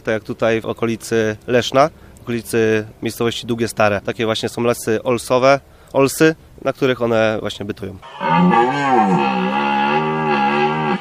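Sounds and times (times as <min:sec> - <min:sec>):
speech: 0:00.0 - 0:09.6
red deer roaring during the rut: 0:08.0 - 0:11.0.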